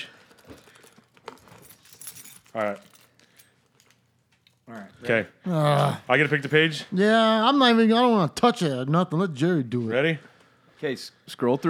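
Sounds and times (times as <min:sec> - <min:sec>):
metal keys jangling as they are handled: 0:00.0 - 0:04.6
low noise: 0:00.0 - 0:11.6
speech: 0:02.6 - 0:02.9, 0:04.7 - 0:11.6.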